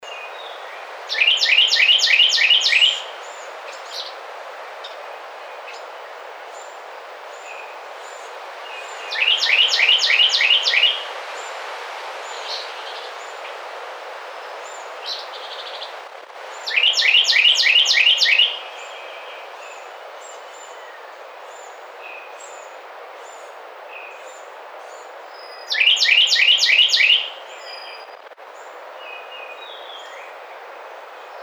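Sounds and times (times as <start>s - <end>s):
Carolina wren singing: 0.5s - 4.2s, 7.4s - 11.1s, 14.6s - 30.4s.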